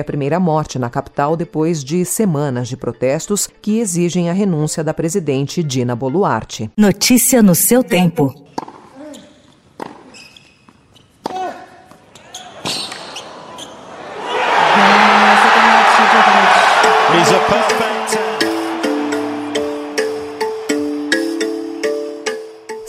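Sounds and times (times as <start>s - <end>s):
speech: 0.0s - 8.8s
tennis ball bounces and thuds: 8.5s - 8.9s, 9.8s - 10.2s
large tennis crowd cheering and applause: 13.4s - 22.2s.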